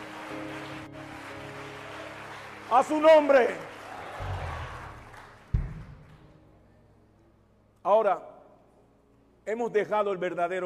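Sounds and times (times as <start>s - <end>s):
crowd clapping: 0.0s - 6.4s
speech: 2.7s - 3.7s, 7.9s - 8.3s, 9.5s - 10.6s.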